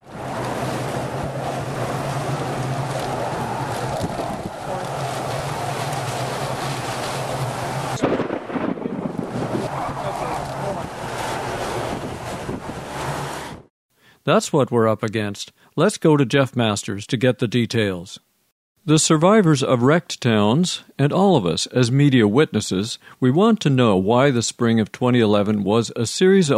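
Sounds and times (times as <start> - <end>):
wind roar of an approaching tornado in Joplin Missouri: 0.0 - 13.7
speech: 14.3 - 18.2, 18.8 - 26.5.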